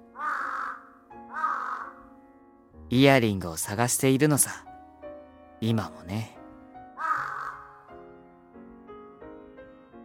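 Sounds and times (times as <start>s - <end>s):
crow cawing: 0.0s - 2.1s, 7.0s - 7.9s
speech: 2.9s - 4.7s, 5.6s - 6.4s.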